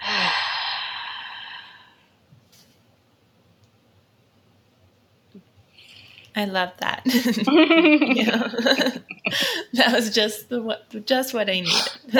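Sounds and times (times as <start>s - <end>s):
deep breath out during a guided breathing exercise: 0.0s - 2.2s
speech: 6.4s - 12.1s.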